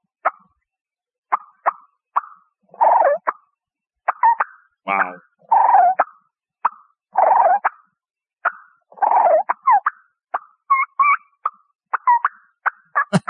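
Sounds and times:
imitated wild turkey clucks: 1.3 - 3.4, 4.1 - 7.8, 8.4 - 13.2
speech: 4.9 - 5.3.

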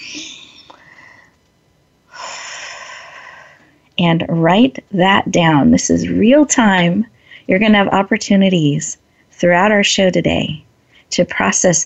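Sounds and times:
long airy breaths taken during a guided relaxation exercise: 0.7 - 1.4, 2.1 - 3.8
speech: 4.0 - 11.8.

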